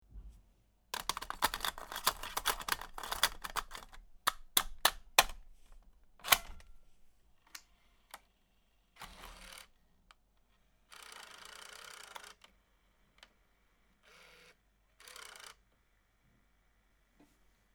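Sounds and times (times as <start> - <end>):
film being loaded into a camera: 1.0 - 6.9, 9.0 - 9.6.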